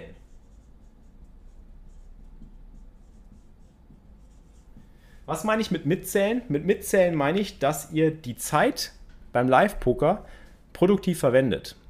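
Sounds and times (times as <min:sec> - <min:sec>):
low hum: 0:00.0 - 0:11.8
pen scratching across paper: 0:00.2 - 0:04.9
speech: 0:05.3 - 0:11.8.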